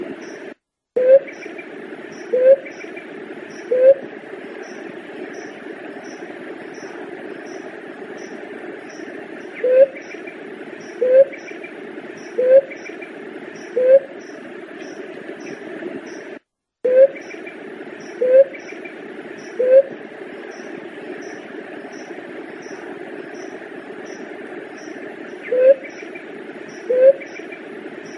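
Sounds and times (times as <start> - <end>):
broad steady hiss: 0.0 - 16.4, 17.0 - 28.1
Leptotila dove cooing: 2.2 - 2.8, 3.6 - 4.1, 9.6 - 10.1, 11.0 - 11.4, 12.3 - 12.9, 13.7 - 14.1, 16.9 - 17.3, 18.1 - 18.6, 19.5 - 20.0, 25.4 - 26.0, 26.7 - 27.4.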